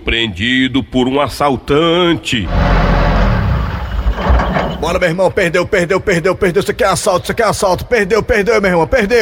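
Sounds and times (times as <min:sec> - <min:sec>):
speech: 0:00.0 - 0:02.9, 0:04.8 - 0:09.2
car engine running with a low continuous rumble while driving: 0:02.5 - 0:04.8.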